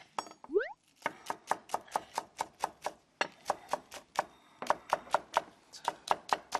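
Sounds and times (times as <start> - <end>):
knife slicing large green onions on a cutting board: 1.0 - 6.5.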